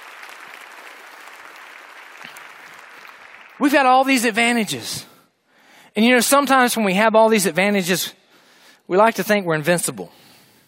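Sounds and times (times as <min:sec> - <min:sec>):
audience applause for singers: 0:00.0 - 0:03.9
speech: 0:03.6 - 0:05.1, 0:06.0 - 0:08.2, 0:08.9 - 0:10.2.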